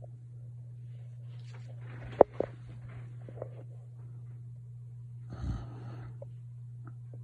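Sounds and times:
steady low electrical hum: 0.0s - 7.2s
loud rough breathy snoring: 5.3s - 6.2s.

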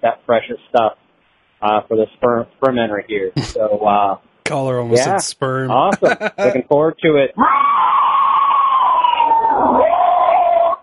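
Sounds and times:
speech: 0.0s - 1.0s, 1.6s - 8.0s
laughter: 5.0s - 6.6s
caller imitating a zombie screech: 7.4s - 10.8s.

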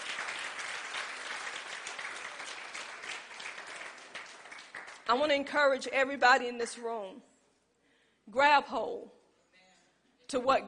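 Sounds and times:
room full of people applauding: 0.0s - 5.1s
speech: 5.1s - 7.3s, 8.3s - 9.2s, 10.3s - 10.6s.

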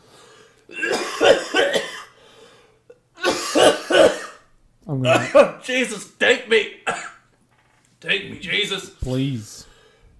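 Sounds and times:
harsh coughing fit with rapid hacking coughs: 0.7s - 2.2s, 3.2s - 4.5s, 5.1s - 5.6s, 6.8s - 7.2s
speech: 5.0s - 6.8s, 8.0s - 9.7s.

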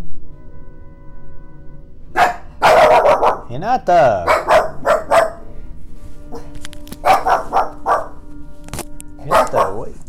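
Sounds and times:
dog barking: 2.2s - 3.5s, 4.2s - 5.5s, 6.3s - 8.2s, 9.2s - 10.0s
speech: 3.5s - 4.8s
faint scuffling: 5.0s - 10.0s.

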